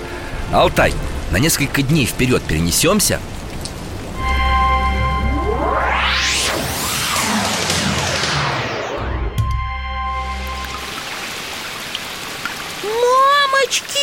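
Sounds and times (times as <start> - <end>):
heavy rain downpour: 0.0 - 14.0
speech: 0.5 - 3.4
brief warbling tone: 4.1 - 11.2
loud rising and falling whooshing sweep: 4.2 - 10.9.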